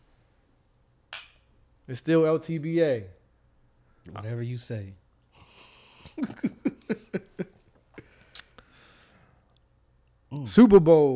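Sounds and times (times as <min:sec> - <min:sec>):
shot glasses clinking in a toast: 0:01.1 - 0:01.6
speech: 0:01.9 - 0:03.2, 0:04.0 - 0:05.0, 0:06.1 - 0:07.3, 0:10.4 - 0:11.1
laughter: 0:06.0 - 0:07.6.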